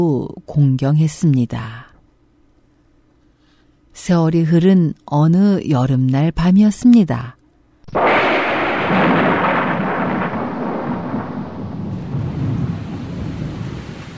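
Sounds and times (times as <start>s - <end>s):
speech: 0.0s - 1.9s, 4.0s - 8.2s
loud crack of thunder rolling into a long rumble: 7.9s - 14.1s
steady hiss of heavy pouring rain: 8.0s - 14.1s.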